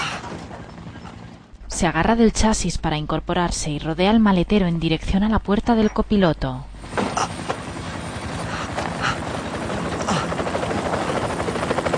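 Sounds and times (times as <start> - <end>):
helicopters landing with rotors beating: 0.0 - 1.6, 5.8 - 11.9
speech: 1.8 - 7.3.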